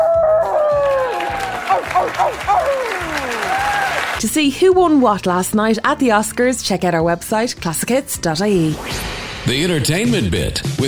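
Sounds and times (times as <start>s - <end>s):
person howling like a wolf at an awards ceremony: 0.0s - 4.0s
steady applause at an awards ceremony: 0.0s - 4.2s
person's wavering yelps: 0.6s - 3.9s
crowd noise at an awards ceremony: 1.0s - 4.2s
speech: 4.2s - 10.8s.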